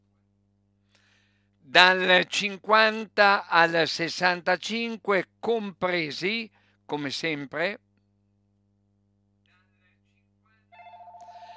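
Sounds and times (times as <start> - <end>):
low hum: 0.0 - 11.5
speech: 1.7 - 7.8
telephone ringing with warbling electronic tone: 10.8 - 11.5.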